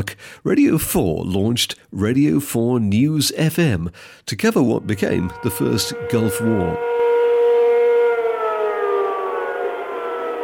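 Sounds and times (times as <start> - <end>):
speech: 0.0 - 7.0
air raid siren wailing: 4.7 - 10.4.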